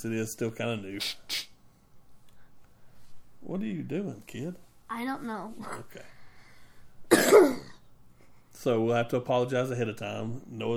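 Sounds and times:
speech: 0.0 - 1.5, 3.5 - 6.2, 8.6 - 10.7
sick child giving a short raspy cough: 7.1 - 7.9.

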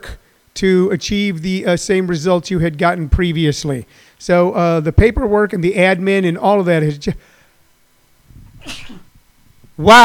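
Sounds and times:
speech: 0.6 - 7.3, 8.6 - 9.0, 9.8 - 10.0
person sneezing softly: 8.6 - 9.1.

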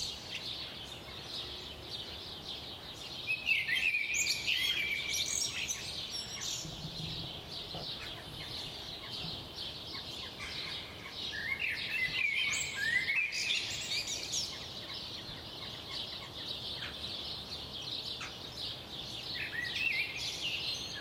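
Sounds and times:
birds in chorus twittering and chirping at 4am: 0.0 - 21.0
sweeping whistled bird phrases: 3.2 - 9.3, 10.0 - 14.7, 19.2 - 21.0.

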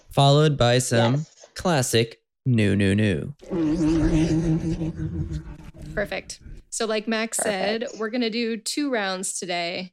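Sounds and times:
speech: 0.2 - 9.9
dragon screech breaking sound barrier effect: 3.4 - 6.1
rumbling whooshing tail: 3.6 - 6.6.

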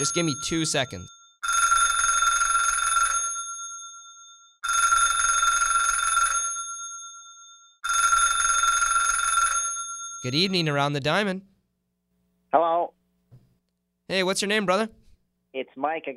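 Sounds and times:
speech: 0.0 - 1.2, 10.2 - 11.5, 12.5 - 13.0, 14.1 - 16.1
telephone ringing with an incoming call on a sports call-in line: 0.0 - 10.9.

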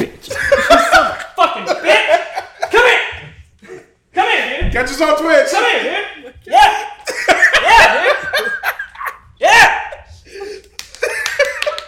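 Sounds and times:
excited voices: 0.0 - 11.8
laughter: 0.2 - 3.9, 7.0 - 11.8
speech: 4.7 - 6.6
hand slapping a thigh: 10.5 - 11.8.

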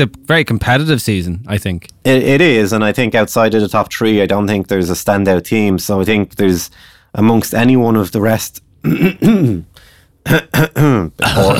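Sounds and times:
speech: 0.0 - 11.5
man clearing his throat: 8.8 - 11.5.

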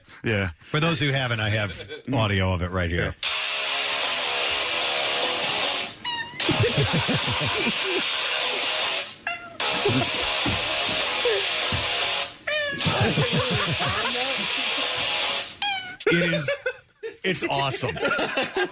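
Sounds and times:
speech: 0.2 - 3.3, 6.8 - 8.3, 9.9 - 10.6, 16.1 - 18.7
loud continuous music: 3.2 - 15.6
cat meowing along to music: 6.0 - 6.5, 15.6 - 16.0
laughter: 6.4 - 8.7, 9.6 - 15.2, 16.0 - 18.7.

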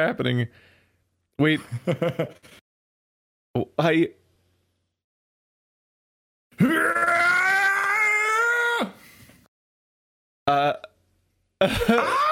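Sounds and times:
speech: 0.0 - 0.7, 1.4 - 2.6, 3.6 - 4.2, 6.6 - 6.8, 11.6 - 12.2
slowed-down stock scream sound effect: 6.6 - 9.0.

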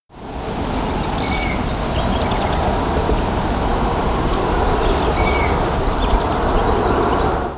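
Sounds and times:
steady loud rumbling noise: 0.4 - 7.5
long-eared owl high squeaky calls: 1.2 - 1.7, 5.2 - 5.6.

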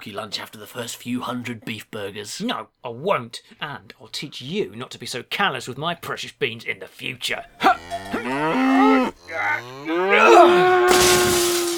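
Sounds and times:
speech: 0.0 - 11.4
cow mooing: 7.6 - 11.3.

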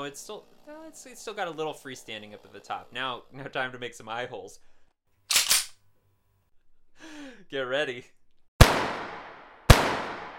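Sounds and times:
speech: 0.0 - 4.7, 7.0 - 8.2
gunshots fired into a pumpkin in a studio: 8.6 - 10.3.

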